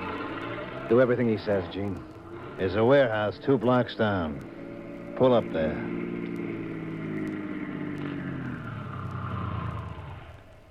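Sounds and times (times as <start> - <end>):
car engine humming while driving: 0.0 - 10.7
speech: 0.9 - 4.5, 5.2 - 6.2.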